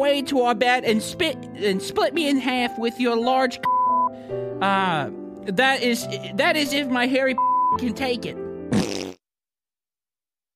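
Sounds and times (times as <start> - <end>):
speech: 0.0 - 3.7, 4.3 - 9.0
short buzzy fart: 8.7 - 9.3.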